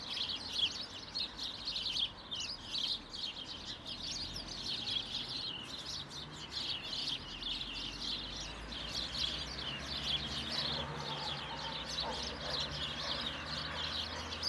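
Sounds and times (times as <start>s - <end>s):
birds chattering in a hedge: 0.0s - 14.4s
vehicle passing: 8.6s - 14.4s.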